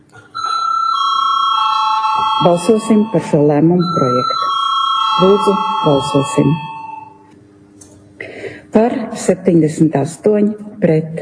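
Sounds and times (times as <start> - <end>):
electric bell ringing in a parliament chamber to call a vote: 0.4 - 7.3
speech: 2.4 - 4.5, 5.2 - 6.7, 8.7 - 11.2.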